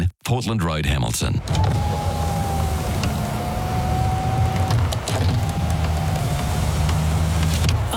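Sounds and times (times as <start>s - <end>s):
speech: 0.3s - 2.3s
low car engine rumble: 1.3s - 7.9s
car power window electric motor whining: 1.4s - 7.9s.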